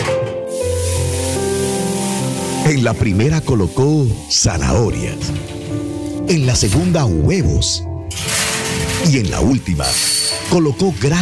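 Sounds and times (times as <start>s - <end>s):
water pouring into a pot in a kitchen: 0.6s - 5.6s
speech: 2.7s - 8.4s, 9.0s - 11.2s.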